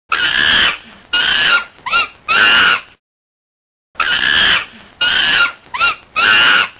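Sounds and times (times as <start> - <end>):
monkey: 0.1 - 3.0, 4.0 - 6.7.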